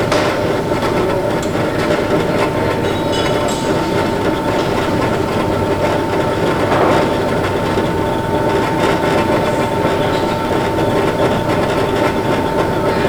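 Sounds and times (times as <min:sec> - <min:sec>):
conveyor: 0:00.0 - 0:13.0.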